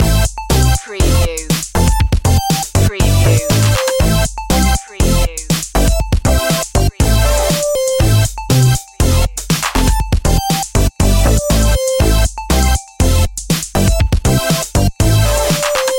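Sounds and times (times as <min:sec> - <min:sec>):
fun video game music loop: 0:00.0 - 0:15.9.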